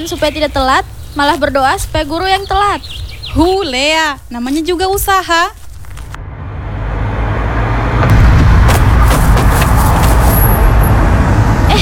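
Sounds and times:
speech: 0.0s - 5.6s
hiss from the road: 0.0s - 6.2s, 8.7s - 11.8s
car engine in passing roadside traffic: 5.8s - 11.8s
motorbike droning in passing roadside traffic: 6.1s - 11.8s.

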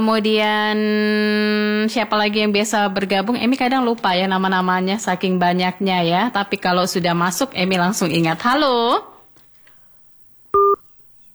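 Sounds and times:
speech: 0.0s - 9.1s
two-pitch electronic telephone tone after a call is cut off: 10.6s - 10.8s.

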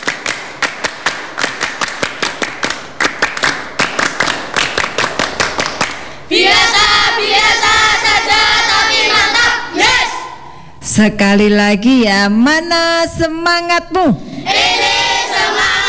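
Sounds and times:
group of children clapping rhythmically: 0.0s - 10.5s, 14.5s - 15.8s
speech: 6.3s - 6.5s, 11.0s - 14.3s
children doing a scout group chant: 6.3s - 10.6s, 14.4s - 15.8s.

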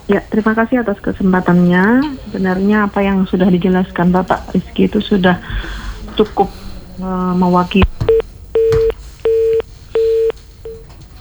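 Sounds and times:
laughter: 0.0s - 8.9s
low hiss: 0.0s - 11.1s
speech: 0.1s - 7.9s
telephone busy tone beeps after a call is cut off: 7.8s - 10.9s.

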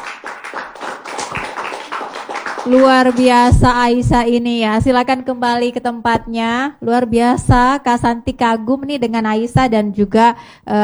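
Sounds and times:
applause from a group of children and adults at a gathering: 0.0s - 3.8s
speech: 2.6s - 10.8s.

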